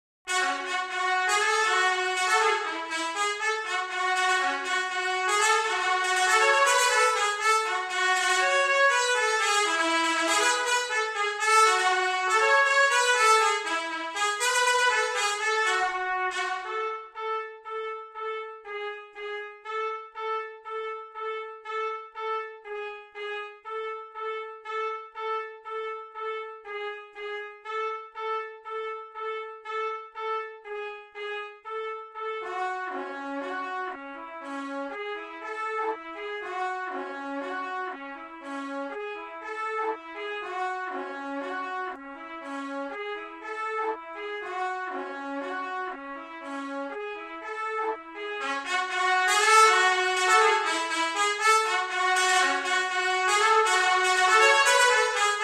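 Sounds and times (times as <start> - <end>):
B-flat trumpet: 0.3 - 55.4.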